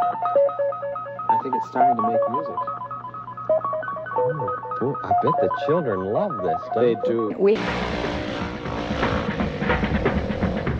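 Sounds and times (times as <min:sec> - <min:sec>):
speech: 0:00.1 - 0:02.8, 0:04.3 - 0:08.2
motorcycle engine revving: 0:07.6 - 0:10.7.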